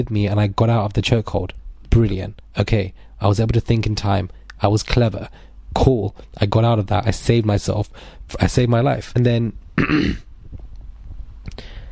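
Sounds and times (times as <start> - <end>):
speech: 0.0 - 10.3
rough throat clearing after a chokehold: 9.8 - 10.3.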